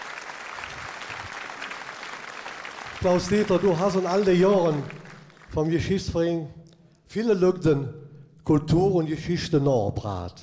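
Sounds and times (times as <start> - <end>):
audience applauding at a ceremony honouring a local history society member: 0.0 - 5.6
speech: 3.0 - 10.4.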